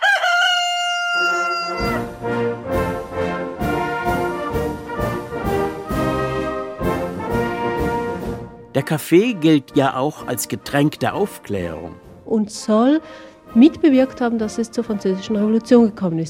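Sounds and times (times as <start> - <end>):
rooster crowing: 0.0 - 2.1
rhythmic percussive music: 1.8 - 16.2
speech: 8.8 - 16.2.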